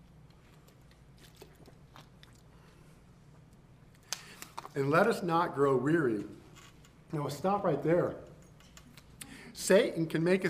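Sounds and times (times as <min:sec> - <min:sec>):
low steady hum: 0:00.0 - 0:10.4
preacher sipping and swallowing water: 0:00.7 - 0:03.1
speech: 0:04.8 - 0:06.4, 0:07.1 - 0:08.3, 0:09.6 - 0:10.4.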